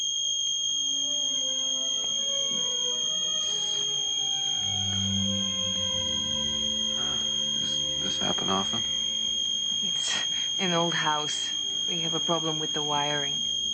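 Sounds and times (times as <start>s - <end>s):
smoke alarm shrill high-pitched tone: 0.0s - 13.7s
speech: 8.5s - 9.0s, 9.8s - 13.6s.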